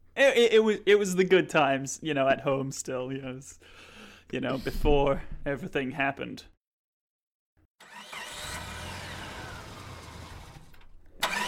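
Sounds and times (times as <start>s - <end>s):
speech: 0.2s - 6.5s
car engine starting: 7.8s - 11.4s.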